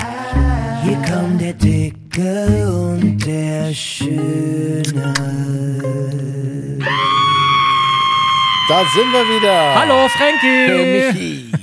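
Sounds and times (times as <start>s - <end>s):
low steady droning tone: 0.4s - 0.9s
speech: 0.8s - 7.2s, 8.7s - 11.6s
child screaming loudly at a high pitch: 6.8s - 11.0s.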